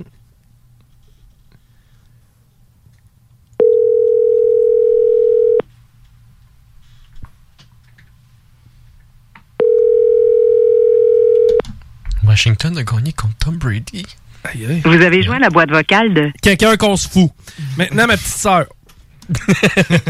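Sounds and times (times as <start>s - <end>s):
speech: 0.0s - 0.2s, 12.4s - 20.0s
faint hum: 0.0s - 20.0s
phone line ringback tone: 3.6s - 5.6s, 9.6s - 11.6s
laughter: 19.3s - 20.0s.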